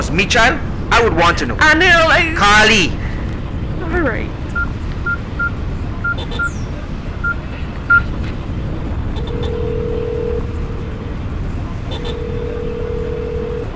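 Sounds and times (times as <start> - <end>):
constant low rumble: 0.0 - 13.7
speech: 0.1 - 3.0, 3.9 - 4.4
long steady phone ringing tones: 9.2 - 11.0, 11.9 - 13.7.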